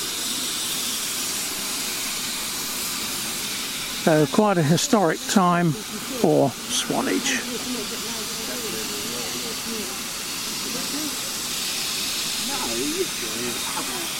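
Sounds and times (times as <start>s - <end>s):
loud hiss of escaping steam from a steam locomotive at Swanage: 0.0s - 14.1s
speech: 4.0s - 8.4s, 12.8s - 14.1s
indistinct murmuring voices of people on board: 4.0s - 14.1s.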